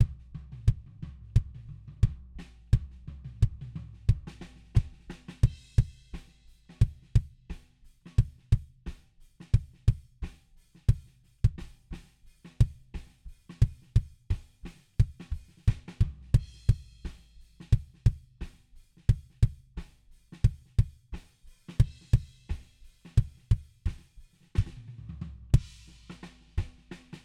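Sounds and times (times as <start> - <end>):
equalized kick drum: 0.0 - 6.1, 6.7 - 7.4, 8.1 - 8.8, 9.6 - 10.2, 10.9 - 11.8, 12.5 - 17.1, 17.7 - 18.4, 19.1 - 19.8, 20.4 - 21.2, 21.8 - 25.9, 26.6 - 26.9.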